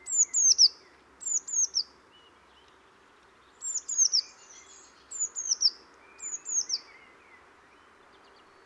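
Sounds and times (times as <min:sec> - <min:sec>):
Eurasian blue tit Cyanistes caeruleus calling: 0:00.0 - 0:02.7, 0:03.5 - 0:07.8
faint background hiss: 0:00.0 - 0:08.6.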